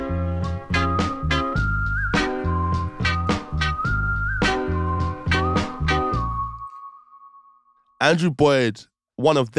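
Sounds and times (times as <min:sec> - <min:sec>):
whistled melody: 0:00.4 - 0:08.0
speech: 0:08.0 - 0:09.5.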